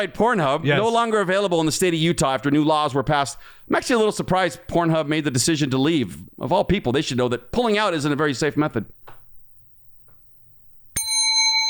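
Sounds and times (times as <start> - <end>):
speech: 0.0 - 9.0
bell ringing: 11.0 - 11.6.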